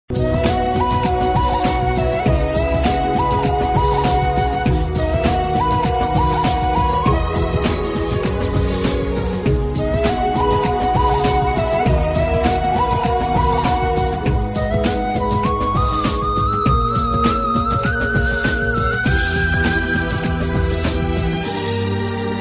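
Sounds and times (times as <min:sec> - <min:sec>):
background instrumental ringtone music: 0:00.1 - 0:22.3.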